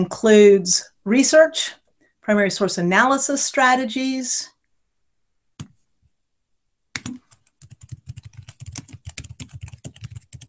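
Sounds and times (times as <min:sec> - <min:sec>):
speech: 0:00.0 - 0:04.5
faint computer keyboard typing: 0:07.0 - 0:10.4.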